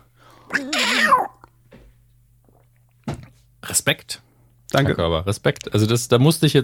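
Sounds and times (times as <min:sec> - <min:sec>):
person imitating a cat meowing: 0:00.5 - 0:01.4
speech: 0:03.7 - 0:06.6.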